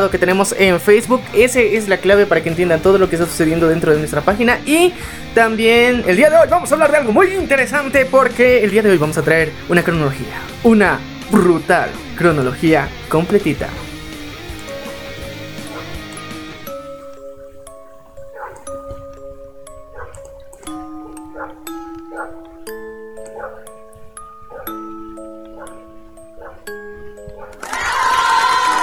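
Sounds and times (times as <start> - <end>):
speech: 0.0 - 13.9
noisy music: 0.0 - 28.8
melody played with pitched dog barks: 13.7 - 14.2, 15.4 - 16.6, 17.9 - 19.0, 19.8 - 27.6.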